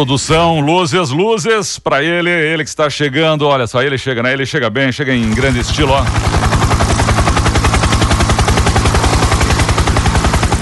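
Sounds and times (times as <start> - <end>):
speech: 0.0 - 6.7
helicopter rotor blades thumping with heavy engine roar: 5.2 - 10.6.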